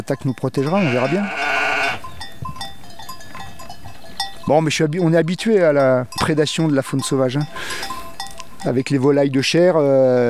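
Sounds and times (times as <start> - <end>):
speech: 0.1 - 2.1, 4.5 - 7.9, 8.6 - 10.2
flock of young ewe lambs bleating: 0.6 - 2.1.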